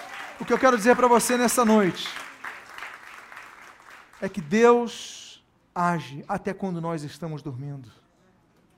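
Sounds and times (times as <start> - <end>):
audience applauding: 0.0 - 4.6
speech: 0.4 - 2.3, 4.2 - 5.2, 5.8 - 8.0.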